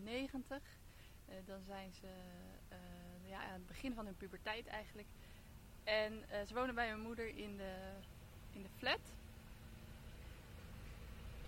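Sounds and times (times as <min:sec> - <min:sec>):
speech: 0:00.0 - 0:09.2
truck passing outside: 0:08.0 - 0:11.4.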